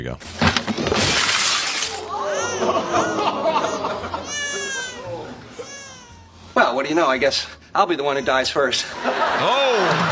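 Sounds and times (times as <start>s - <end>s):
speech: 0.0s - 1.3s, 6.6s - 10.1s
pile of dishes hitting the floor and shattering: 0.3s - 2.2s
laughter: 2.0s - 5.7s, 8.2s - 10.1s
wavering cat-like yowls and vocal sounds: 2.0s - 6.2s.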